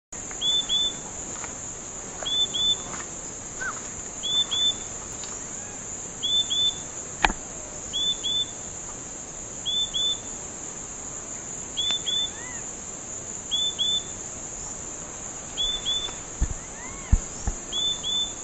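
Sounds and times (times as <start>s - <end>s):
gaturamo capim singing: 0.4s - 1.0s, 2.2s - 3.0s, 3.6s - 7.0s, 7.8s - 8.7s, 9.6s - 10.4s, 11.4s - 12.7s, 13.4s - 18.4s.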